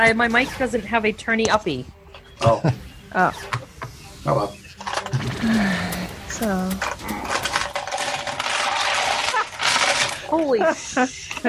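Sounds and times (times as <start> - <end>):
speech: 0.0 - 3.6, 4.2 - 4.6, 5.2 - 7.2, 10.3 - 11.4
many dice clattering out of a tray: 6.7 - 10.3.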